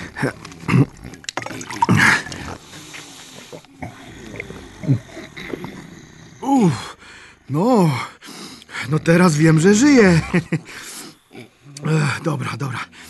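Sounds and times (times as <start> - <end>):
throaty grunting breaths: 0.0 - 13.0
speech: 0.2 - 1.0, 8.9 - 10.9, 12.2 - 13.0
person gulping water: 0.2 - 2.5
water pouring: 0.2 - 2.6.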